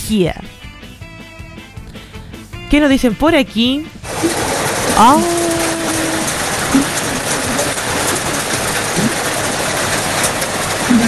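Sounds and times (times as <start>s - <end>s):
speech: 0.1s - 0.6s, 2.7s - 5.5s
heavy rain: 4.0s - 11.0s.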